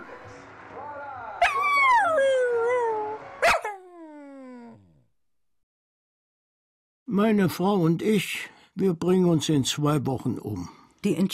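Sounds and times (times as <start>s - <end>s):
dog yipping: 1.4s - 2.3s, 3.4s - 4.0s
speech: 7.2s - 11.3s.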